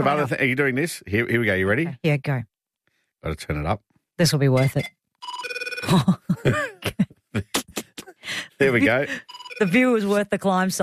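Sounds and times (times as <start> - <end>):
speech: 0.0 - 2.5, 3.2 - 7.1, 8.6 - 10.8
telephone ringing effect with rapid electronic trilling pulses: 4.6 - 6.0, 9.1 - 10.2.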